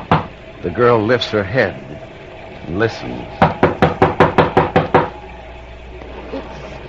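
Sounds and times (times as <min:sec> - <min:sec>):
sharp knocks on a door: 0:00.0 - 0:00.3, 0:03.4 - 0:05.2
speech: 0:00.6 - 0:03.5.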